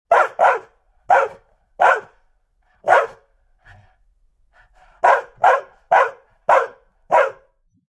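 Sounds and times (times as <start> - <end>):
dog barking energetically: 0.1 - 2.2, 2.8 - 3.3, 4.9 - 7.6.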